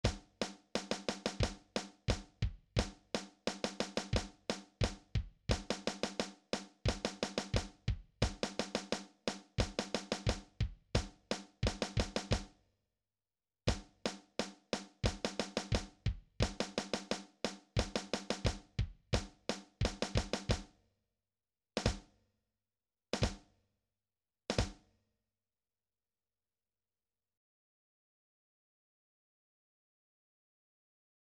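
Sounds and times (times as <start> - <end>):
drums: 0.0 - 12.6, 13.7 - 20.8, 21.8 - 22.2, 23.1 - 23.6, 24.5 - 24.9.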